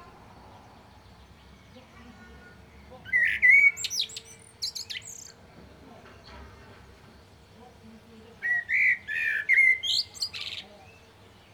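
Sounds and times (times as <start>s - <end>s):
common blackbird Turdus merula flute-like whistled notes: 3.2s - 5.3s, 8.4s - 10.6s.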